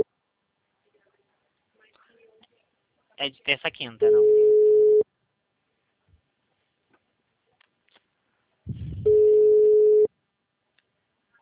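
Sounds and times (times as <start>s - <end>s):
speech: 3.2s - 4.4s
telephone ringback tone while a call to a client connects: 4.1s - 5.0s, 9.0s - 10.1s.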